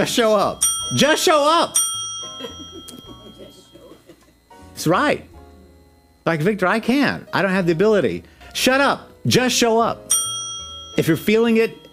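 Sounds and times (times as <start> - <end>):
speech: 0.0 - 1.8, 2.4 - 2.6, 4.8 - 5.3, 6.3 - 10.2, 11.0 - 11.8
bell ringing with shimmering overtones: 0.0 - 4.0, 10.1 - 11.9.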